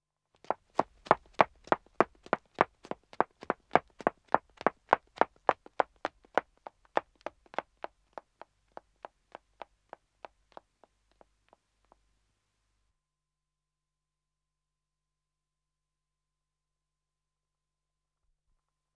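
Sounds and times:
woman running footsteps on wood in a dead acoustic: 0.4 - 11.6.

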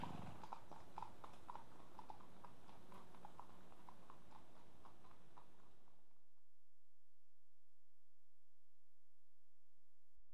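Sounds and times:
two horses walking with hooves clopping on tarmac: 0.0 - 6.1.

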